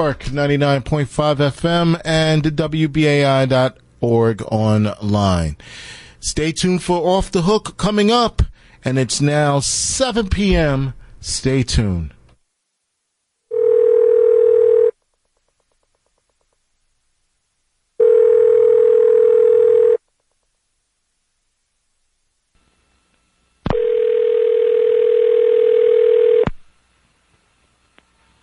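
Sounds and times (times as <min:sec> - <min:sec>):
speech: 0:00.0 - 0:12.2
telephone line tones on a Codetel phone line: 0:13.5 - 0:15.0, 0:18.0 - 0:20.0, 0:23.7 - 0:26.4.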